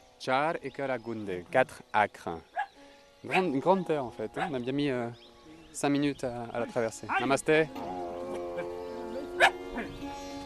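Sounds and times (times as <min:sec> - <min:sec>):
speech: 0:00.2 - 0:02.5, 0:03.2 - 0:07.9, 0:09.4 - 0:10.0
dog barking: 0:04.4 - 0:04.6, 0:07.1 - 0:07.3, 0:09.4 - 0:09.6.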